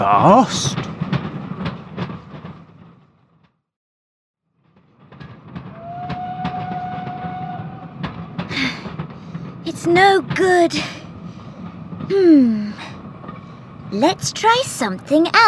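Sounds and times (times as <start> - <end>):
train rumbling along the rails with clickety-clack: 0.0 - 3.5, 4.6 - 15.4
speech: 0.1 - 0.8, 9.8 - 11.0, 12.1 - 12.9, 13.9 - 15.4.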